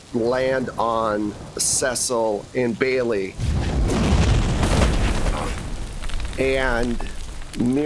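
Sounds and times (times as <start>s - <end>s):
crackling bursts: 0.0s - 7.8s
speech: 0.1s - 3.7s, 6.4s - 7.8s
building explosion: 3.4s - 7.8s.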